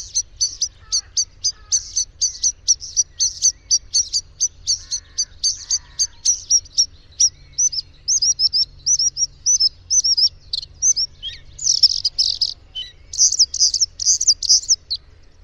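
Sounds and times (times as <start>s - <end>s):
Bluethroat singing: 0.0s - 15.0s.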